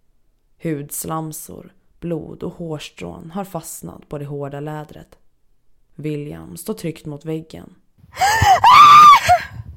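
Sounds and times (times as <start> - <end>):
speech: 0.6 - 5.2, 6.0 - 8.8
woman screaming in terror: 8.2 - 9.6.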